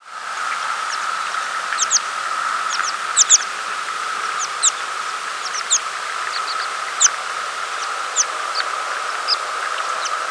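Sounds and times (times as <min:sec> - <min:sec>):
steady hum: 0:00.0 - 0:10.3
American pipit calls: 0:00.8 - 0:03.5, 0:04.3 - 0:07.2, 0:07.8 - 0:10.3.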